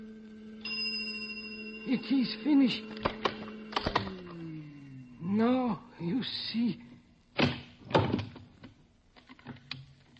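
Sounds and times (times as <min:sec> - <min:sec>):
steady low electrical hum: 0:00.0 - 0:10.1
small bell on a switched-on instrument ringing: 0:00.6 - 0:05.8
speech: 0:01.8 - 0:03.1, 0:05.4 - 0:06.9.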